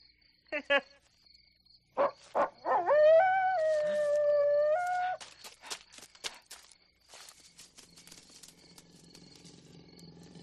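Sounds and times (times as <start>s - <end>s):
dog howling a wavering cry: 2.4s - 5.2s
faint crunching footsteps: 3.5s - 10.4s.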